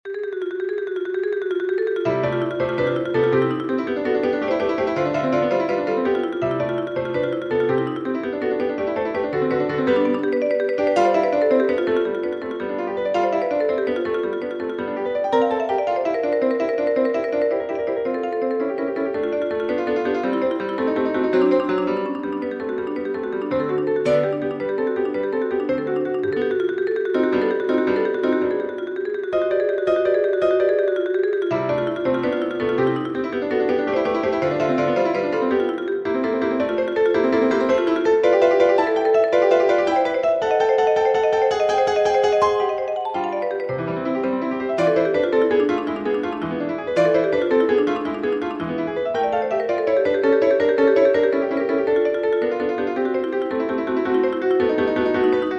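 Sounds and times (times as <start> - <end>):
marimba and piano piece: 0.0 - 55.5.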